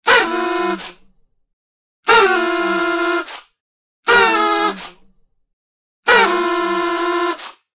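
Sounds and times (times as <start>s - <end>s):
double party horn: 0.0s - 1.0s, 2.0s - 3.3s, 4.0s - 5.0s, 6.0s - 7.6s.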